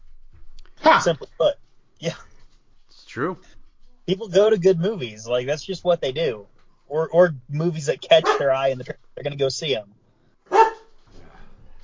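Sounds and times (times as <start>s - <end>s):
faint low noise: 0.0s - 11.8s
speech: 1.0s - 2.3s, 3.1s - 10.6s
dog barking: 8.2s - 8.6s, 10.5s - 10.9s.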